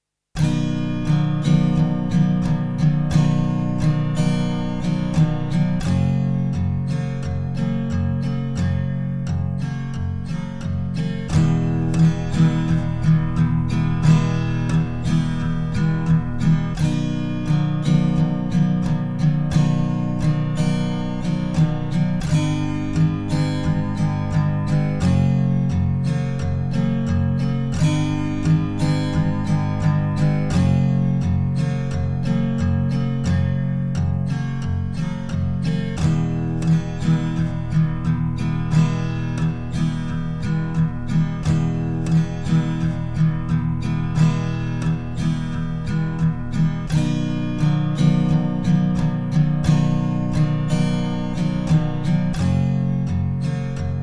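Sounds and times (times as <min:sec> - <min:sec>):
guitar: 0:00.3 - 0:54.0.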